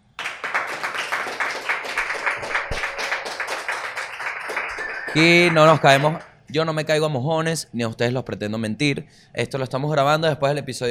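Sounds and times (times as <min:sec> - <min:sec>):
applause from a small group: 0:00.0 - 0:06.3
speech: 0:05.2 - 0:10.8.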